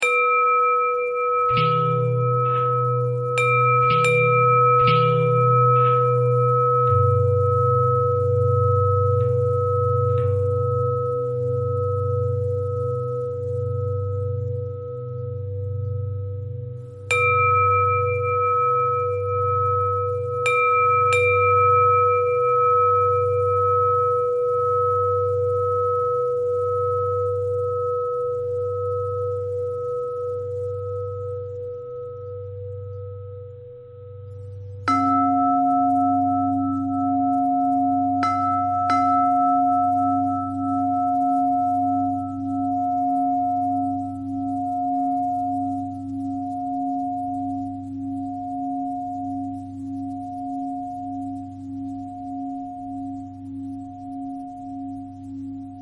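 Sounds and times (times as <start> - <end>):
long pentatonic bell melody: 0.0 - 55.8.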